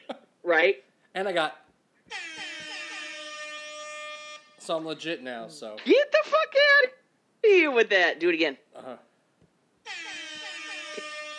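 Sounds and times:
speech: 0.5s - 2.3s, 4.7s - 9.1s
loud sustained air horn blast: 2.1s - 4.9s, 9.9s - 11.3s.

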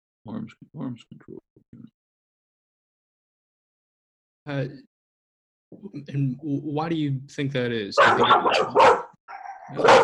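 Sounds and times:
speech: 0.2s - 2.0s, 4.5s - 4.9s, 5.7s - 9.0s, 9.7s - 10.0s
dog barking: 8.0s - 10.0s.

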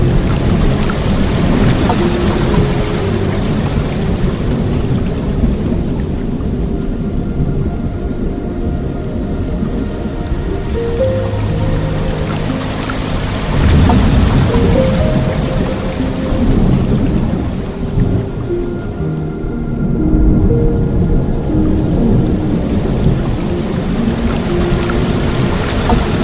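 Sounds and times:
relaxing piano music: 0.0s - 26.2s
tranquil soft water stream: 0.0s - 26.2s.

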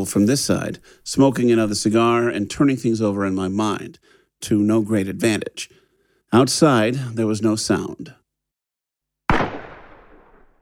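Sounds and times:
speech: 0.0s - 8.2s
gunshot inside a house: 9.3s - 10.6s.

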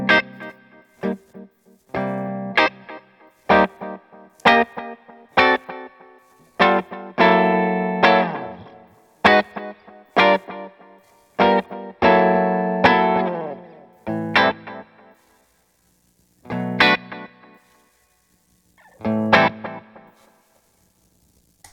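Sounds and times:
electric guitar through a delay pedal with reverb playing notes and chords: 0.0s - 15.2s, 18.8s - 20.1s.

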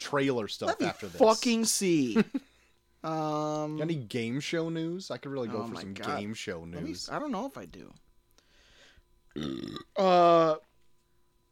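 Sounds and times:
speech: 0.1s - 8.0s, 9.4s - 10.7s
burps into the microphone: 9.3s - 10.6s.

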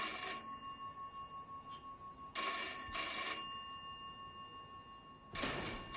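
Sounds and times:
old-style telephone bell ringing: 0.0s - 5.9s.

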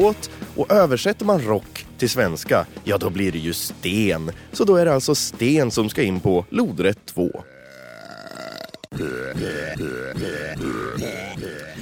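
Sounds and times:
speech: 0.0s - 7.5s
loud burps pitched as if belching a tune: 7.4s - 11.8s.

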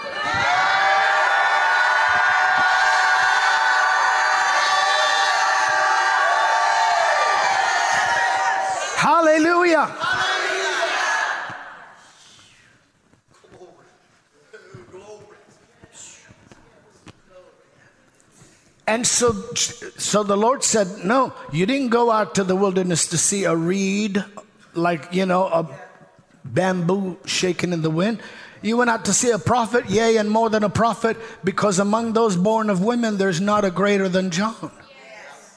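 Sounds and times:
large audience shouting and roaring at a preacher's call: 0.0s - 9.1s, 9.8s - 11.9s
preacher speaking: 9.0s - 10.2s, 18.9s - 25.8s, 26.4s - 34.8s
speech: 9.2s - 10.1s, 18.9s - 25.8s, 26.5s - 34.8s.

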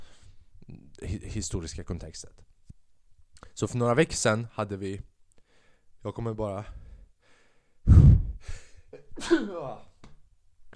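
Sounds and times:
speech: 1.2s - 2.6s, 3.6s - 5.1s, 6.0s - 6.8s, 9.2s - 9.9s
person sneezing: 7.9s - 9.9s.

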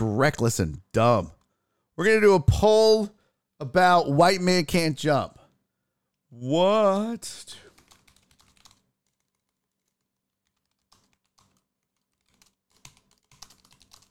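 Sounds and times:
speech: 0.2s - 1.4s, 2.0s - 5.4s, 6.3s - 7.6s
computer keyboard typing: 7.7s - 14.1s.

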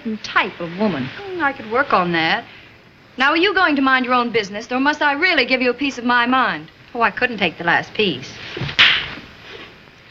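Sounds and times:
speech: 0.0s - 2.6s, 3.2s - 8.6s
sharp slap across the face: 8.6s - 9.2s.

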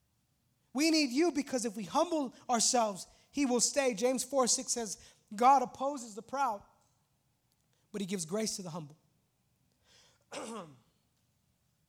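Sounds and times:
speech: 0.7s - 6.7s, 7.9s - 9.0s, 10.3s - 10.8s
harsh cough after a soft breathy intake: 10.3s - 11.0s.

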